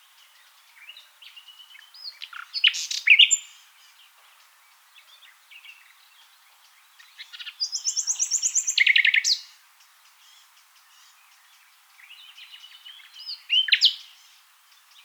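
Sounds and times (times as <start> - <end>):
common nightingale Luscinia megarhynchos song: 0.0 - 15.0.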